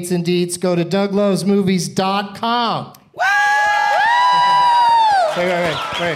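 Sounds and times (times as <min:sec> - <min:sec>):
speech: 0:00.0 - 0:03.3, 0:05.4 - 0:06.1
live audience cheering and whooping: 0:03.2 - 0:06.1
live audience clapping: 0:03.6 - 0:06.1.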